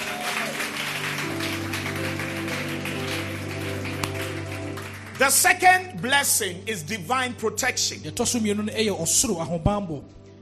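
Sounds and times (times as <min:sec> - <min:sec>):
crowd clapping hands: 0:00.0 - 0:06.1
speech: 0:05.2 - 0:10.2.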